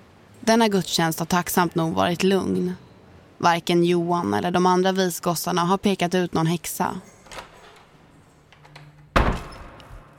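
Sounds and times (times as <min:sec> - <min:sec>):
speech: 0:00.5 - 0:02.8, 0:03.4 - 0:07.1
door swinging shut with a solid thud: 0:07.0 - 0:08.0, 0:08.6 - 0:10.1
door handle rattling: 0:07.0 - 0:09.8
door creaks: 0:07.0 - 0:10.1.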